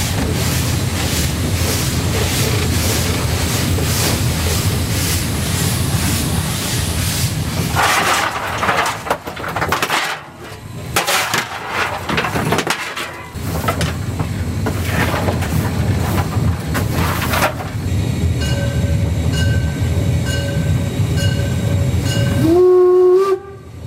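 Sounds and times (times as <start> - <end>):
historic narrow-gauge steam train running near Moritzburg: 0.0 - 23.8.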